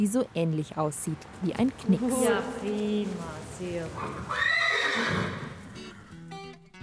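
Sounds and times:
speech: 0.0s - 5.4s
horse whinnying after training: 4.0s - 6.3s.

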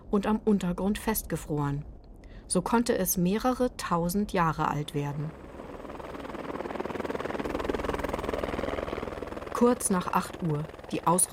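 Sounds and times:
speech: 0.1s - 1.9s, 2.5s - 5.5s, 9.6s - 11.3s
helicopter flying to a summit plateau of ice and snow in Tyrol: 3.3s - 11.3s.

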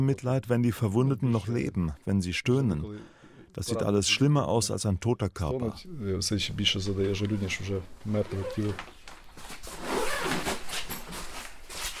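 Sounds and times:
speech: 0.0s - 9.6s
zipper of a body bag being pulled open with a rasping scrape: 9.6s - 11.9s.

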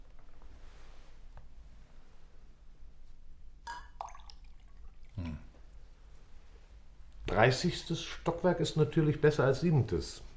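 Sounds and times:
steady low hum: 0.0s - 10.3s
water splashing into a glass: 3.7s - 5.4s
speech: 7.4s - 10.3s.

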